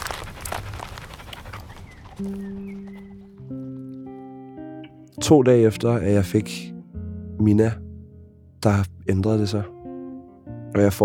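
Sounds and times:
little dog drinking water with wet lapping: 0:00.0 - 0:04.0
speech: 0:02.2 - 0:03.0, 0:05.2 - 0:06.7, 0:07.4 - 0:07.8, 0:08.6 - 0:09.8, 0:10.8 - 0:11.0
soft sustained musical notes: 0:02.2 - 0:11.0.

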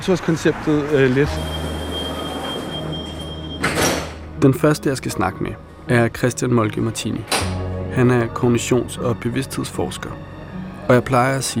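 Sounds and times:
speech: 0:00.0 - 0:01.6, 0:04.4 - 0:10.3, 0:10.9 - 0:11.5
metro train running: 0:00.3 - 0:04.3
thin high whine of a metro train: 0:01.3 - 0:04.3.

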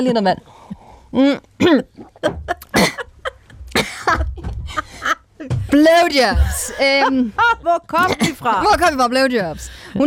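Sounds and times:
speech: 0:00.0 - 0:02.6, 0:05.4 - 0:10.0
person coughing: 0:01.6 - 0:03.1, 0:03.7 - 0:04.2, 0:08.0 - 0:08.5.

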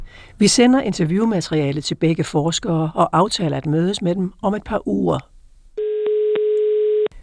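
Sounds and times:
speech: 0:00.2 - 0:05.3
buzzy telephone call tone: 0:05.8 - 0:07.2.

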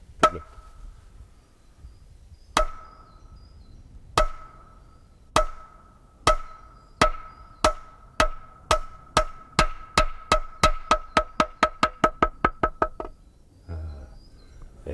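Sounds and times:
wooden mallet striking a very thick wooden board: 0:00.2 - 0:00.6, 0:04.2 - 0:04.6, 0:05.4 - 0:13.2.

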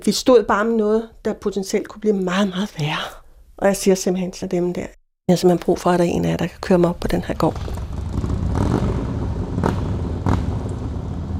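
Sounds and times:
speech: 0:00.0 - 0:07.8
motorcycle engine revving: 0:07.4 - 0:11.3.

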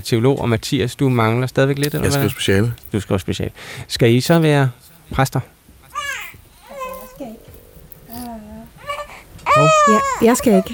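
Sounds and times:
speech: 0:00.0 - 0:05.6, 0:09.6 - 0:10.7
baby crying: 0:05.9 - 0:10.7.

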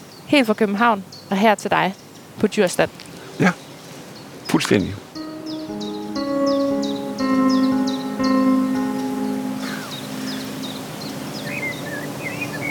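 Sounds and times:
speech: 0:00.3 - 0:03.6, 0:04.5 - 0:05.0
warblers singing outdoors: 0:05.2 - 0:12.6.

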